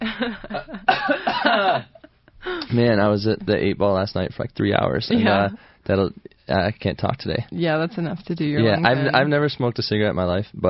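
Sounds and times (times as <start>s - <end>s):
speech: 0.2s - 10.6s
person coughing: 0.9s - 2.0s.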